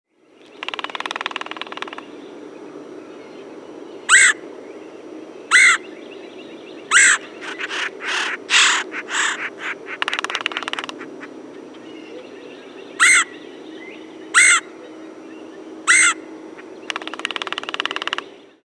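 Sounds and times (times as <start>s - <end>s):
red-headed woodpecker call: 0.6s - 2.1s, 4.1s - 4.4s, 5.5s - 5.9s, 6.9s - 11.1s, 13.0s - 13.4s, 14.3s - 15.0s, 15.8s - 18.3s.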